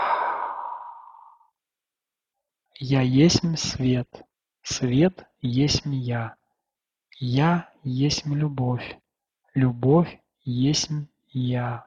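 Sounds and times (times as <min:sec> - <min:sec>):
person exhaling deeply through the mouth: 0:00.0 - 0:01.5
person taking a deep breath in: 0:00.0 - 0:01.5
speech: 0:02.8 - 0:06.4, 0:07.2 - 0:09.0, 0:09.6 - 0:11.8.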